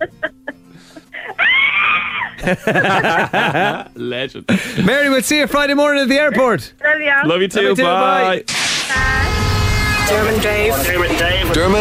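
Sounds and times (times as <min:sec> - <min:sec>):
laughter: 0:00.0 - 0:03.9
woman screaming with excitement: 0:01.3 - 0:02.4
speech: 0:02.4 - 0:09.2, 0:10.1 - 0:11.7.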